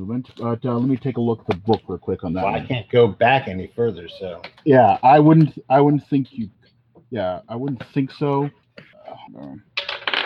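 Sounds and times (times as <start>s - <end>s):
speech: 0.0s - 9.7s
dice clattering across a hard tabletop during a tabletop game: 9.8s - 10.2s.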